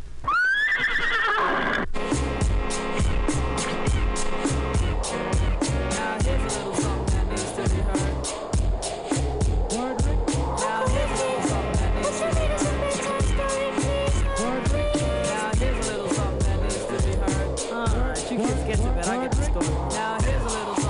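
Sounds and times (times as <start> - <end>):
horse whinnying: 0.2 - 2.0
dense steady rhythmic pulse: 2.0 - 20.8.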